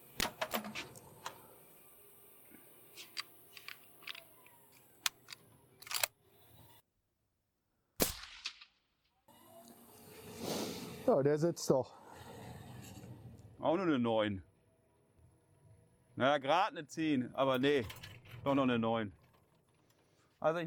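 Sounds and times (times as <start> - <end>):
mechanical clicks and rifle handling noise: 2.9 - 6.2
suppressed rifle shots: 8.0 - 8.8
speech: 11.1 - 12.0, 13.6 - 14.5, 16.2 - 19.2, 20.4 - 20.6.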